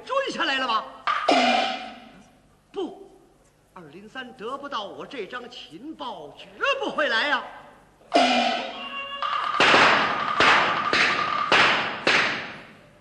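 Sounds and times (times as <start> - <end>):
speech: 0.3 - 1.5, 4.1 - 8.6
loud gunshots: 9.5 - 12.7.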